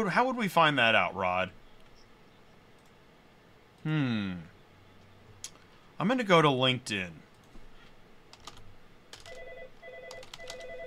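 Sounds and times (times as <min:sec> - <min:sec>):
speech: 0:00.0 - 0:01.6, 0:03.8 - 0:04.5, 0:06.0 - 0:07.2
clicky keyboard typing: 0:08.3 - 0:10.8
phone ringing with electronic warble: 0:09.2 - 0:10.8.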